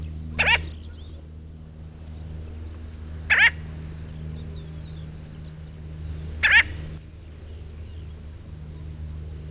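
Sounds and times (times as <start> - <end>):
tern giving short harsh rasping calls: 0.0 - 1.2, 3.3 - 3.7, 6.4 - 6.9
steady low hum: 0.0 - 9.4.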